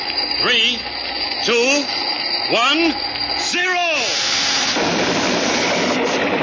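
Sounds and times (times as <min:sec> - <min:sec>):
speech: 0:01.5 - 0:04.2
loud sustained roaring explosion blast: 0:04.7 - 0:06.4.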